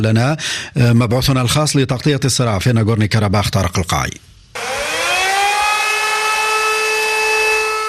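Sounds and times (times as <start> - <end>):
speech: 0.0 - 4.3
air raid siren wailing in a city: 4.6 - 7.8.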